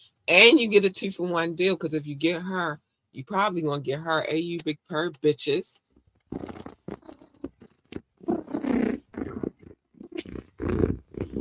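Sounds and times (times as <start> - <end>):
speech: 0.3 - 6.7
cat purring: 6.3 - 11.3.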